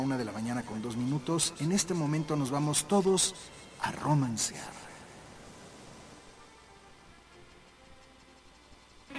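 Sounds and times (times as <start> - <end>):
speech: 0.0 - 4.9
soft rushing of sea breeze and surf: 1.4 - 7.2.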